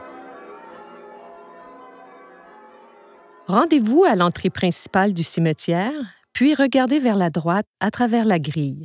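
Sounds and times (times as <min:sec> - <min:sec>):
cathedral bells ringing a carillon: 0:00.0 - 0:04.8
speech: 0:03.5 - 0:08.8.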